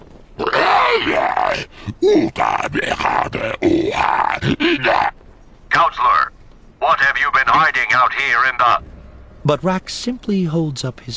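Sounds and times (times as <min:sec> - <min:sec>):
alien creature shrieking and growling: 0:00.4 - 0:05.1
speech: 0:01.0 - 0:05.1, 0:05.7 - 0:11.1.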